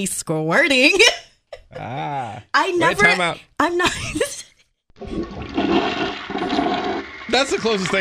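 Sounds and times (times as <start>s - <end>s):
speech: 0.0s - 4.4s, 5.0s - 7.9s
toilet flushing: 5.0s - 7.9s.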